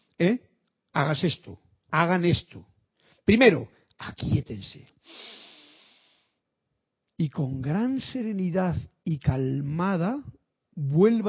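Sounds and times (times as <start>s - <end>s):
speech: 0.2s - 5.4s, 7.2s - 11.2s
slow calming breath: 5.0s - 6.4s.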